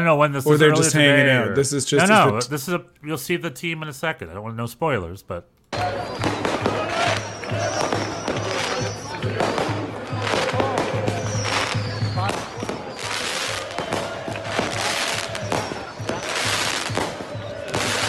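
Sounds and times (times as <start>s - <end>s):
speech: 0.0s - 6.0s
faint people's voices outdoors: 5.7s - 18.0s
fireworks crackling and popping along a street: 5.7s - 18.0s.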